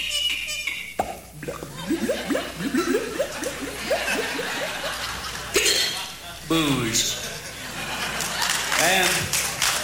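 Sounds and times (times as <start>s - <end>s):
performer's voice imitating a cork popping from a bottle: 1.0s - 4.9s
performer's voice imitating rhythmic rising glugs of gurgling liquid: 1.0s - 5.0s
laughter: 1.6s - 6.4s, 7.1s - 9.8s
speech: 6.5s - 7.2s.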